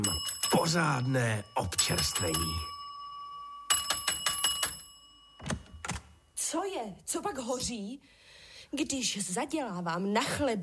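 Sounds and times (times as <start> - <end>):
speech: 0.0 - 2.7, 6.5 - 10.6
bell ringing in rapid rattling bursts: 0.0 - 6.3.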